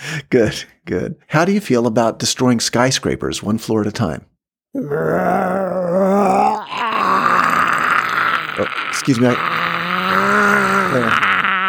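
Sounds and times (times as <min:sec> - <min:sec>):
speech: 0:00.2 - 0:06.8, 0:08.6 - 0:09.7, 0:10.9 - 0:11.3
voice imitating a rumbling stomach with a low groan: 0:04.8 - 0:11.6.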